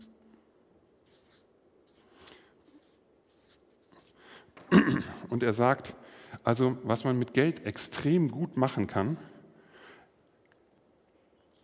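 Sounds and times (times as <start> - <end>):
pen scratching across paper drawing a banknote and coins: 1.0 - 4.1
speech: 4.9 - 9.4.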